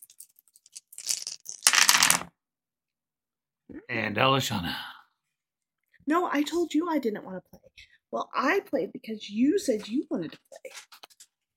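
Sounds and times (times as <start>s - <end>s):
dice clattering and rattling in a cup: 0.0s - 2.3s
speech: 3.9s - 4.9s, 6.1s - 10.8s.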